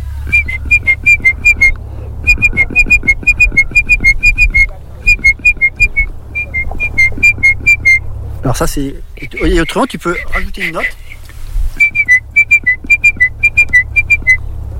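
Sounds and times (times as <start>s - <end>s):
person whistling an imitation of a great tit's song: 0.3s - 8.0s, 11.8s - 14.5s
speech: 8.6s - 11.0s.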